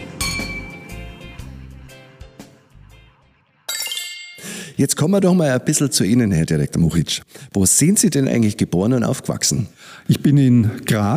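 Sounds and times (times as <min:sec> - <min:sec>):
glasses clinking together in a toast: 0:03.7 - 0:04.5
speech: 0:04.7 - 0:11.1.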